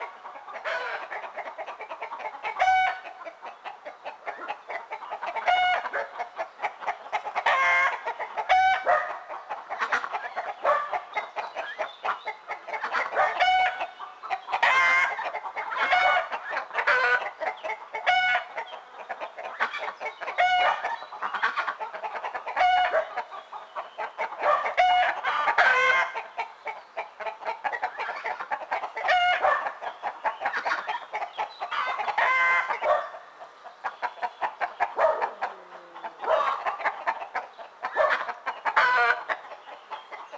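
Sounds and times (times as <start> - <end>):
geese: 0.0 - 40.3
dog: 8.9 - 9.2, 32.8 - 33.2, 35.0 - 35.5, 36.2 - 36.7, 38.0 - 38.3.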